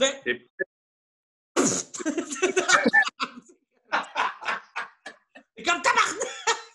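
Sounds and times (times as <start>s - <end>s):
speech: 0.0s - 0.6s
person imitating coughing with their voice: 1.6s - 3.1s, 6.0s - 6.6s
laughter: 2.0s - 6.7s.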